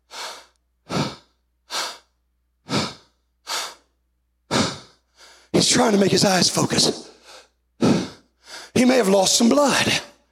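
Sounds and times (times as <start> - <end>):
person imitating heavy labored breathing: 0.0 - 3.9, 4.5 - 5.4, 7.1 - 8.7
speech: 5.6 - 7.1, 8.8 - 10.1.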